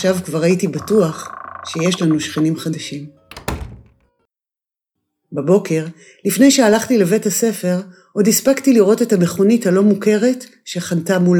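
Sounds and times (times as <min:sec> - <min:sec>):
speech: 0:00.0 - 0:03.2, 0:05.3 - 0:11.3
knocking: 0:03.2 - 0:04.0
soft house door slam: 0:03.2 - 0:04.1.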